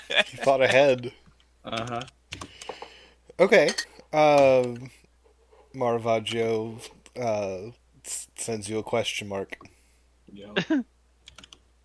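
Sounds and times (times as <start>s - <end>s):
speech: 0.1s - 2.2s, 3.4s - 5.0s, 5.8s - 10.9s
typing on a computer keyboard: 1.7s - 2.8s, 11.2s - 11.6s.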